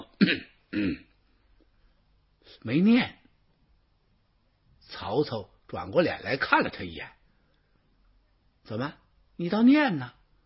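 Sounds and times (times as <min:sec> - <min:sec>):
storyteller imitating dry coughs of an official clearing his throat: 0:00.0 - 0:01.2
speech: 0:00.2 - 0:01.1, 0:02.5 - 0:03.2, 0:04.9 - 0:07.2, 0:08.7 - 0:10.2.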